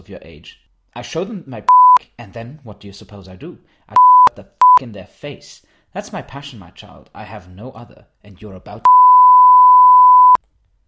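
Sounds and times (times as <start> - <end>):
speech: 0.0 - 8.9
censor bleep tone masking a word: 1.7 - 2.0, 4.0 - 4.8, 8.9 - 10.4.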